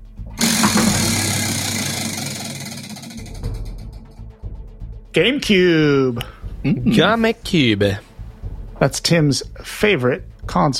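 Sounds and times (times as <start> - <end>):
prize wheel spinning during a game segment: 0.4 - 3.9
speech: 5.2 - 8.1, 8.8 - 10.7.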